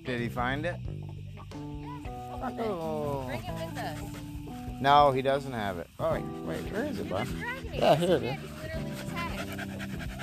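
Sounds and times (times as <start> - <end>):
speech: 0.1 - 1.8, 2.4 - 8.6
dog panting: 2.5 - 4.8, 5.6 - 10.2.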